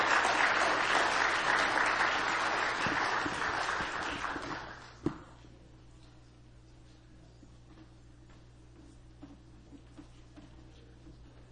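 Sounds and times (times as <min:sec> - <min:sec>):
audience applauding: 0:00.0 - 0:05.0.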